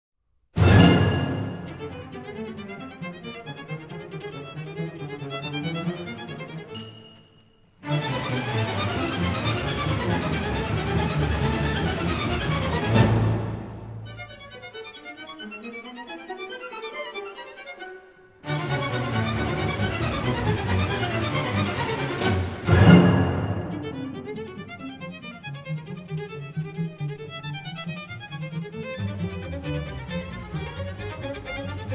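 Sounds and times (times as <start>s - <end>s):
percussion: 0.6s - 2.4s, 6.8s - 14.4s, 18.6s - 25.0s
string orchestra: 0.6s - 31.9s
violin: 0.6s - 31.9s.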